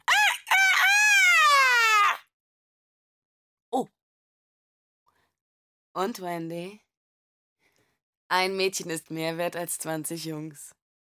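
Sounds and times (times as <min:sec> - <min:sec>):
boy imitating a rooster's cock-a-doodle-doo crow: 0:00.0 - 0:02.2
speech: 0:03.8 - 0:04.0, 0:06.0 - 0:06.8, 0:08.3 - 0:10.8.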